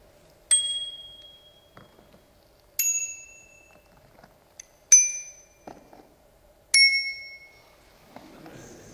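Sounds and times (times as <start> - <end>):
low-pitched bicycle bell ringing: 0.5 - 1.8, 2.8 - 3.9, 4.9 - 5.6, 6.8 - 7.6.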